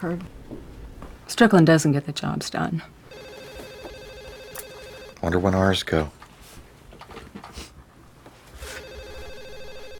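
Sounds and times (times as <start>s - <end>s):
speech: 0.0s - 0.4s, 1.3s - 3.3s, 5.2s - 6.2s
telephone ringing with electronic trill: 3.1s - 5.3s, 8.7s - 9.9s.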